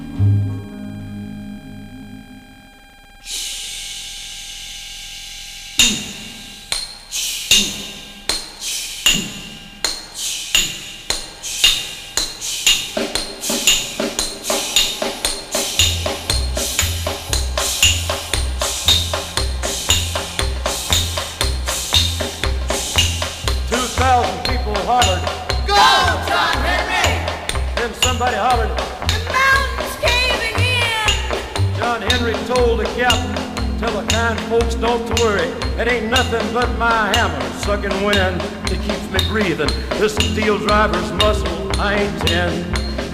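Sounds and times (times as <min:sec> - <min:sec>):
low musical tones: 0:00.0 - 0:03.2, 0:15.0 - 0:43.1
hammers clanging on steel: 0:05.8 - 0:26.0, 0:31.1 - 0:43.1.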